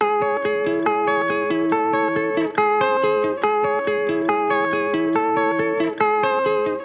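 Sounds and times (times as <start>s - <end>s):
wet processed guitar loop in C sharp minor: 0.0s - 6.8s.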